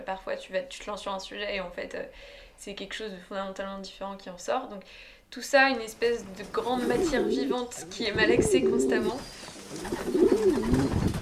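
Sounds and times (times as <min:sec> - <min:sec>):
speech: 0:00.0 - 0:11.1
pigeons cooing: 0:06.6 - 0:11.1.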